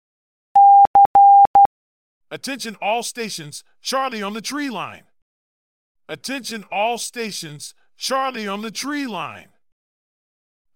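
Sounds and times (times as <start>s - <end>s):
morse code beeps: 0.6s - 1.7s
speech: 2.3s - 5.1s, 6.1s - 9.5s.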